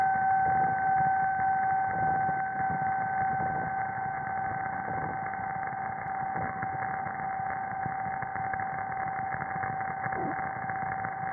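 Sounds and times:
electromagnetic interference picked up as a steady electrical drone: 0.2 - 11.1.

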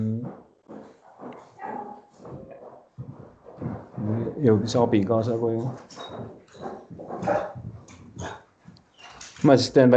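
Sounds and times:
dog barking and yipping with whimpering: 1.0 - 2.8, 6.0 - 8.4
speech: 4.1 - 6.4, 7.2 - 7.7, 9.4 - 9.9.

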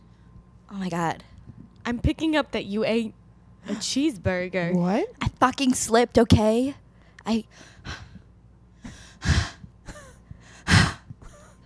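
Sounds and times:
speech: 0.7 - 1.3, 1.9 - 8.0
heavy breathing into a microphone: 6.9 - 11.1.

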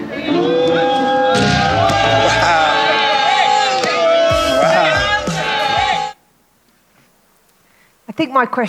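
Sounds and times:
large basketball crowd jeering and hollering: 0.0 - 6.2
speech: 8.2 - 8.6.

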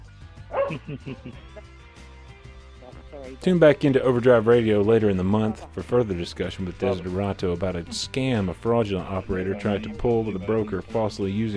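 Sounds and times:
dogs barking: 0.5 - 1.2, 6.6 - 7.4, 9.4 - 10.9
laughter: 0.6 - 1.8, 5.2 - 11.5
speech: 0.7 - 1.8, 2.9 - 11.5.

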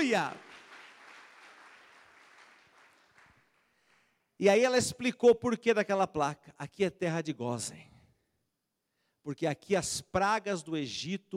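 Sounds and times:
speech: 0.0 - 0.4, 4.4 - 7.9, 9.2 - 11.3
audience applauding: 0.0 - 4.2.

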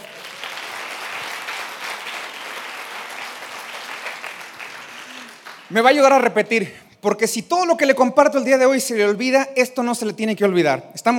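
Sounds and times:
audience applause: 0.0 - 5.8
speech: 5.7 - 11.1.

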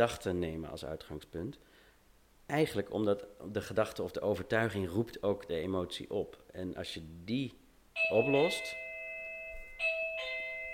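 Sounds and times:
speech: 0.0 - 1.8, 2.5 - 8.8
electronic two-tone doorbell chime: 8.0 - 10.7.

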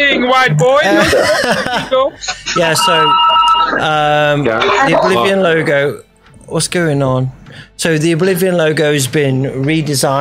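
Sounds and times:
speech: 0.0 - 10.2
laughter: 0.8 - 2.8
telephone ringing with a bright electronic tone: 2.5 - 5.4.

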